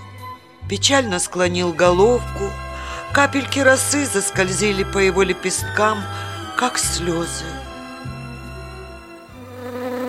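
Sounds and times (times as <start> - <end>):
speech: 0.7 - 7.7
bee flying past, buzzing: 9.4 - 10.0.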